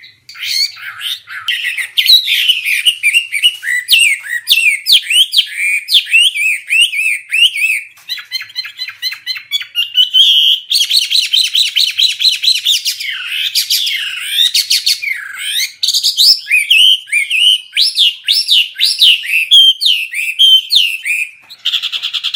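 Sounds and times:
Hwamei singing varied whistled and slurred phrases: 0.0 - 22.3.

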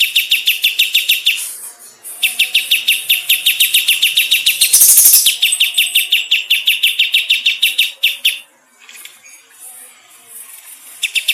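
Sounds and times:
bulbul singing bright repeated chirps: 0.0 - 8.5, 11.0 - 11.3.

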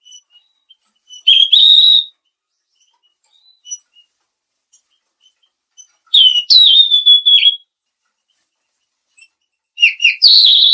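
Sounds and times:
mangrove blue flycatcher singing whistled phrases: 0.0 - 2.1, 6.1 - 7.7, 9.8 - 10.7.

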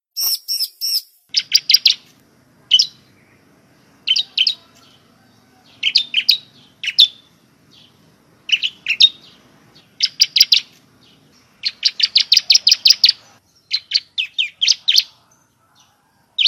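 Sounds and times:
prinia singing squeaky chirps in semi style: 0.1 - 16.4.

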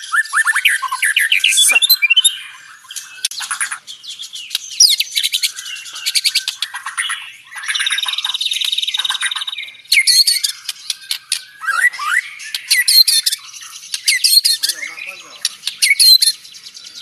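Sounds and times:
Banjar white-rumped shama singing in tembakan style: 0.0 - 17.0.

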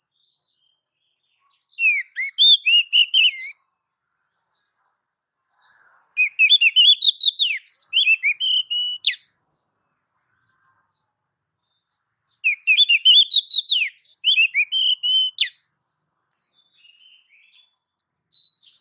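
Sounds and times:
female Oriental magpie-robin calling the male: 1.4 - 3.7, 6.2 - 9.3, 12.3 - 15.7, 16.6 - 18.8.

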